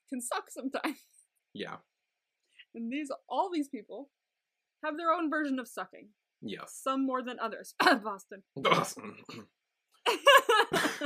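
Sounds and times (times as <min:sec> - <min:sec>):
speech: 0:00.1 - 0:01.9, 0:02.7 - 0:04.2, 0:04.8 - 0:11.0
person clearing throat: 0:08.6 - 0:09.4, 0:10.7 - 0:11.0
raspy grunt: 0:08.6 - 0:09.4
laughter: 0:10.1 - 0:11.0.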